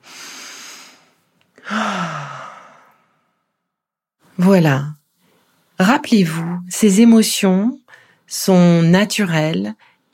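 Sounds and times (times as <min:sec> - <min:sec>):
long voiced exhale: 0:00.0 - 0:03.4
deep breathy inhale: 0:00.0 - 0:03.6
speech: 0:04.4 - 0:05.0, 0:05.8 - 0:10.1.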